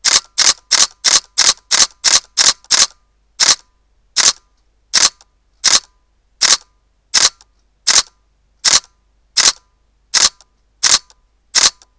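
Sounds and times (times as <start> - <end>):
DSLR camera shutter in continuous low-speed RAW shooting: 0.0 - 4.4, 5.0 - 9.6, 10.2 - 11.9.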